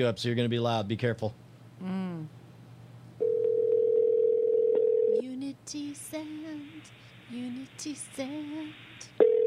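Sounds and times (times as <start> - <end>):
speech: 0.0 - 2.4, 5.7 - 9.3
telephone dial tone as a call is placed: 3.2 - 5.2, 9.2 - 9.4.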